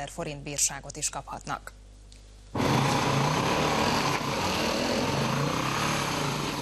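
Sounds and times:
speech: 0.0s - 1.8s
off-road motorcycle engine running in a protected forest area near Salgótarján Hungary: 2.6s - 6.6s.

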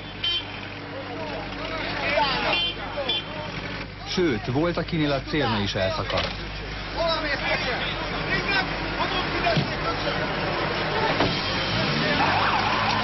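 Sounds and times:
street traffic rumble: 0.0s - 13.0s
voices chattering: 0.0s - 13.0s
crowd murmuring at a street protest: 0.8s - 13.0s
speech: 4.2s - 8.2s, 9.5s - 11.4s
ambulance siren wailing through traffic: 11.7s - 13.0s.

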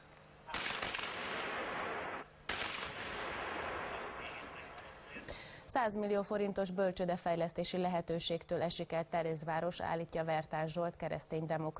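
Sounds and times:
sniper rifle shots hitting a gas cylinder on a playground: 0.5s - 4.6s
speech: 5.3s - 11.7s.

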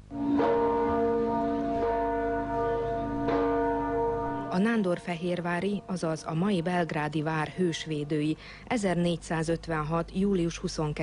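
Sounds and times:
church bell ringing at noon: 0.0s - 8.2s
speech: 4.6s - 11.0s.

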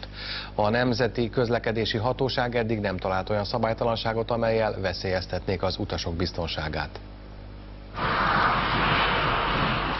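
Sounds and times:
speech: 0.6s - 7.1s
passenger jet engines powering up for takeoff: 8.0s - 9.9s.

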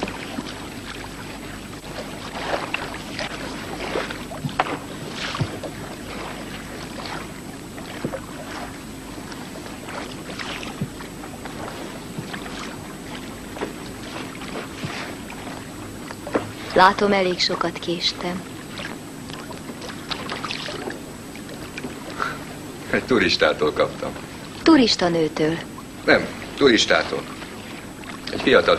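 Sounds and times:
passenger boat engine rumble: 0.0s - 28.7s
water splashing and hissing wash of a passenger boat: 0.0s - 28.7s
speech: 16.8s - 18.5s, 23.0s - 27.4s, 28.4s - 28.7s.

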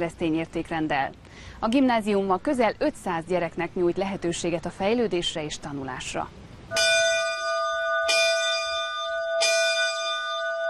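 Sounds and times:
speech: 0.0s - 6.8s
school bell ringing: 6.7s - 10.6s.

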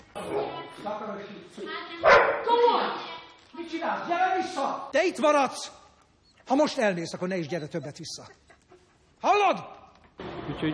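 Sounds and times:
speech: 0.8s - 2.6s, 3.7s - 5.8s, 6.5s - 8.4s, 9.2s - 10.7s
dog barking and yipping: 2.0s - 2.5s.

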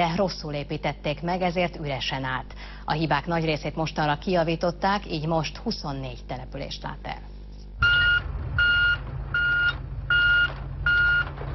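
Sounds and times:
speech: 0.0s - 7.9s
loaded garbage truck reverse alarm beeping at a landfill: 7.8s - 11.4s
loaded garbage truck low engine rumble: 7.8s - 11.5s.

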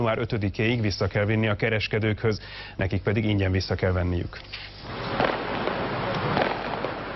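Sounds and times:
speech: 0.0s - 5.2s
steady outdoor hiss: 0.0s - 7.1s
small fireworks display exploding in Budapest: 4.8s - 7.1s.

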